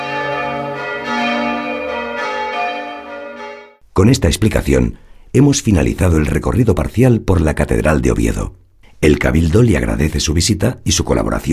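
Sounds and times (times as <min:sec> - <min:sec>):
large church bells ringing in a cathedral tower: 0:00.0 - 0:03.8
speech: 0:04.0 - 0:11.5.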